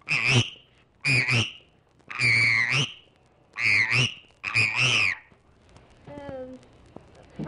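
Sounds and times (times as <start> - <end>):
frog croaking in raspy bursts: 0.0 - 3.0, 3.6 - 5.3.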